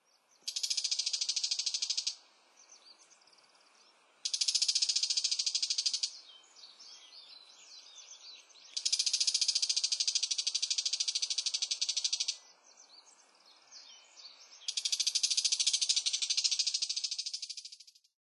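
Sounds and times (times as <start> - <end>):
bull-headed shrike calling in Utsunomiya: 0.5 - 2.2, 4.2 - 6.9, 8.7 - 12.4, 14.7 - 17.9.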